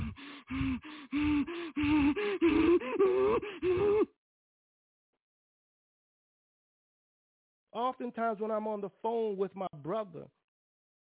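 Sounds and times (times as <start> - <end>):
person imitating heavy elevated breathing of someone in distress: 0.0 - 4.2
speech: 7.8 - 10.4.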